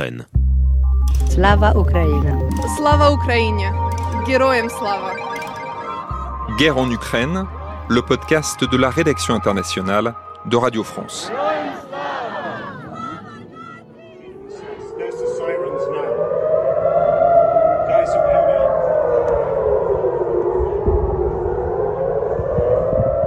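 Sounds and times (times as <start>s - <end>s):
speech: 0.0s - 0.4s, 1.1s - 5.3s, 6.5s - 11.8s
air raid siren wailing: 1.7s - 23.2s
crowd noise: 3.7s - 8.8s, 10.4s - 15.4s
people shouting: 11.0s - 15.1s.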